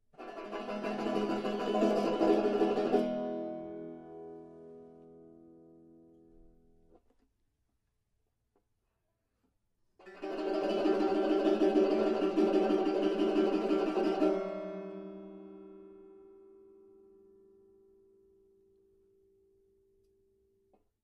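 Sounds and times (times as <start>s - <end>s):
banjo: 0.1s - 5.7s, 10.0s - 16.4s.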